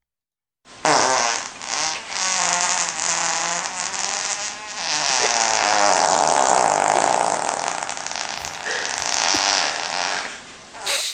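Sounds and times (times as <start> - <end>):
recorded fart: 0.8 - 10.9.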